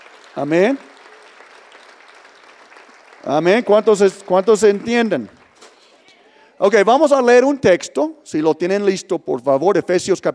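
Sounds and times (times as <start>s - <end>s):
audience applauding: 0.0s - 6.1s
speech: 0.4s - 0.9s, 3.3s - 5.4s, 6.6s - 10.3s.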